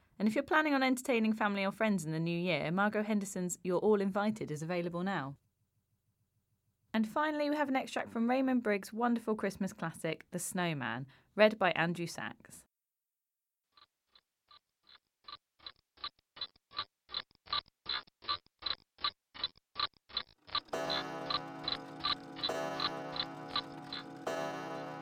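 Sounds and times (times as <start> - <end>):
speech: 0.2 - 5.4, 7.0 - 12.7
grandfather clock ticking: 20.4 - 25.0.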